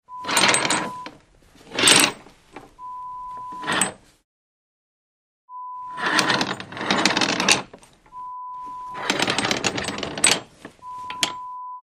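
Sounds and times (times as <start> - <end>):
curtains moving: 0.2 - 4.2, 5.9 - 11.4.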